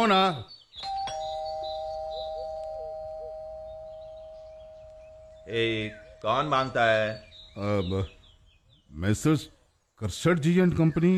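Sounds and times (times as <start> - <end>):
speech: 0.0 - 0.5, 5.5 - 8.2, 8.9 - 11.1
electronic doorbell ringing: 0.8 - 4.8.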